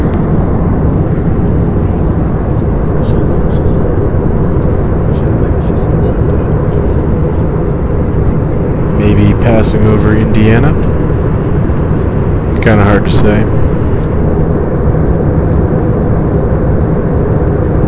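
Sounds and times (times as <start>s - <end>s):
faint murmurs: 0.0s - 14.7s
airplane cabin drone in flight: 0.0s - 17.8s
speech: 9.6s - 10.9s, 12.7s - 13.6s.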